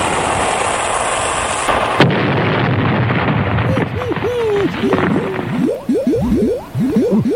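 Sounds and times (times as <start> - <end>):
rumbling noise: 0.0 - 7.3
cannon-fire sound effect as a ship is sunk: 1.7 - 5.8
bouncy warbling sliding tones: 3.7 - 7.3.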